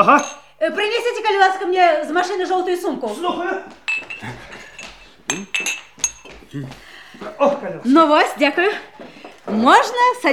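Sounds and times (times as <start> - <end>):
glasses and shot glasses clinking as they are handled and set down: 0.0 - 0.6, 3.9 - 6.5
speech: 0.0 - 4.5, 5.3 - 5.8, 6.5 - 10.3.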